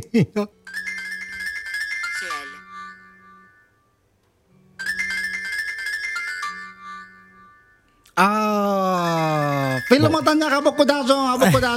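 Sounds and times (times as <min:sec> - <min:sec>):
speech: 0:00.0 - 0:00.6, 0:08.2 - 0:08.6, 0:09.9 - 0:11.7
electronic telephone ringtone jingle during outgoing call: 0:00.7 - 0:03.8, 0:04.8 - 0:07.8, 0:09.0 - 0:11.6.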